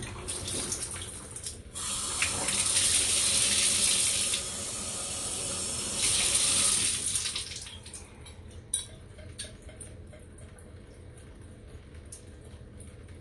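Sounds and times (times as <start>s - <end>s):
cold shower water running: 0.0s - 8.1s.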